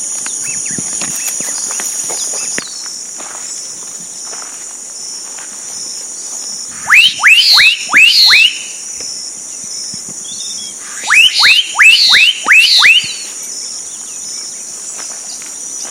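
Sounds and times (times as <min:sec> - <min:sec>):
steady high-pitched insect buzzing: 0:00.0 - 0:15.8
Black-capped donacobius giving rising whistles in Mongaguá Brazil: 0:06.8 - 0:08.7, 0:10.9 - 0:13.4.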